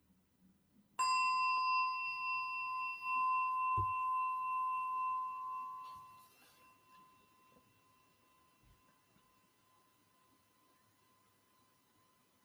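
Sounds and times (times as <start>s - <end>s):
struck singing bowl ringing with shimmering overtones: 1.0s - 8.2s.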